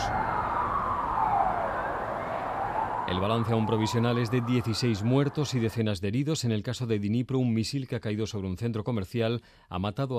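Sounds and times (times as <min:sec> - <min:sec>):
ambulance sirens wailing: 0:00.0 - 0:05.8
dense street background: 0:00.0 - 0:05.8
speech: 0:03.1 - 0:10.1.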